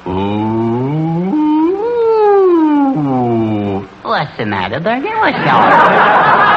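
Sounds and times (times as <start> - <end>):
voice imitating a fire siren wail: 0.1 - 3.7
speech: 4.2 - 6.4
laughter: 5.3 - 6.5.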